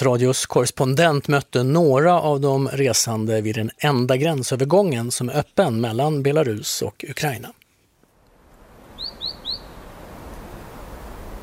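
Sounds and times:
speech: 0.0s - 7.6s
bright bird chirps at a border crossing: 8.9s - 9.9s.

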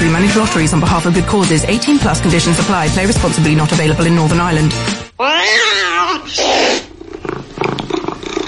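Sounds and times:
speech: 0.2s - 6.9s
cat meowing: 5.2s - 6.9s.

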